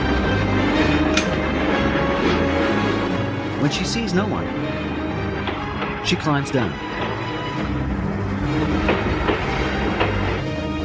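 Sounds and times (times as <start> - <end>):
train running on rails: 0.0 - 10.8
speech: 3.6 - 4.9, 6.0 - 7.1.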